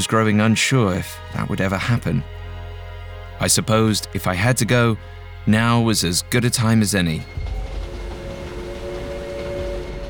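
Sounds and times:
speech: 0:00.0 - 0:02.4, 0:03.4 - 0:07.6
train rumbling on rails heard from inside a private compartment: 0:07.2 - 0:10.0.

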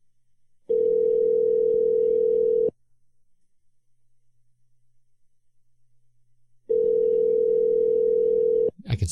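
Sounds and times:
outgoing phone call ringback tone: 0:00.7 - 0:02.7, 0:06.7 - 0:08.7.

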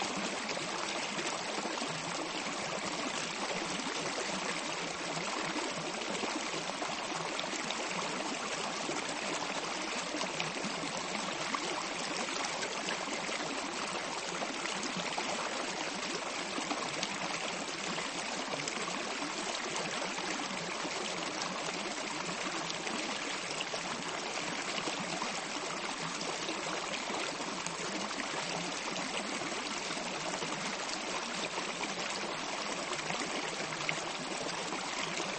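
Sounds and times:
water trickling and splashing at Lapataia Bay Tierra del Fuego Argentina: 0:00.0 - 0:35.3.

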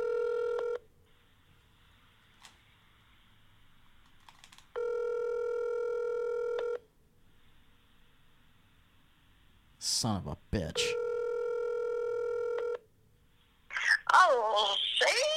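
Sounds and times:
telephone keypad tones while placing a call: 0:00.0 - 0:00.8, 0:04.8 - 0:06.8, 0:10.9 - 0:12.8
faint hiss: 0:00.9 - 0:04.7, 0:07.0 - 0:10.8, 0:13.0 - 0:15.3
speech: 0:10.0 - 0:11.0.

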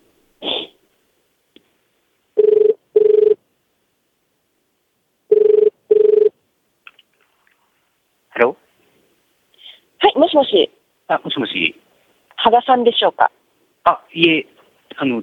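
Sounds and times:
telephone ringback tone for a call from New York to Japan: 0:02.4 - 0:03.4, 0:05.3 - 0:06.3
speech: 0:10.4 - 0:11.8, 0:12.4 - 0:15.2.

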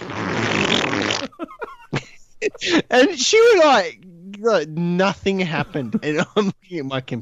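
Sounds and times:
voice imitating a fart with a buzzing raspberry: 0:00.0 - 0:01.4
laughter: 0:01.2 - 0:03.7, 0:05.3 - 0:06.8
speech: 0:02.6 - 0:07.2.

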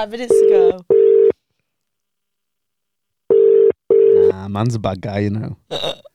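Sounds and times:
speech: 0:00.0 - 0:01.2, 0:04.3 - 0:06.0
steady electronic telephone busy tone: 0:00.3 - 0:01.4, 0:03.3 - 0:04.3.

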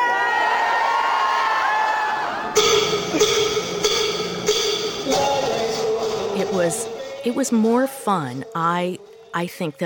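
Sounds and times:
large crowd of librarians screaming and cheering in a huge hangar-like space: 0:00.0 - 0:06.3
speech: 0:06.6 - 0:09.8.

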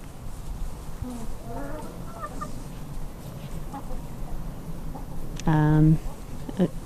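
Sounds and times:
hens clucking around a farmyard: 0:01.0 - 0:05.2
loud hen squawk: 0:01.4 - 0:02.5.

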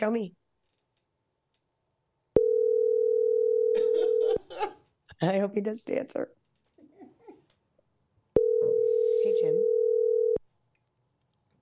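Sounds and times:
speech: 0:00.0 - 0:00.4, 0:04.4 - 0:06.4
outgoing phone call ringback tone on speakerphone: 0:02.4 - 0:04.4, 0:08.4 - 0:10.4.

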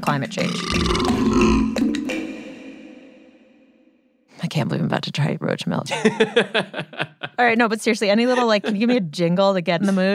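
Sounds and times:
speech: 0:00.0 - 0:02.0, 0:04.6 - 0:10.1
long loud deep rumbling belch: 0:00.4 - 0:03.0
laughter: 0:05.9 - 0:07.5, 0:08.1 - 0:09.1.

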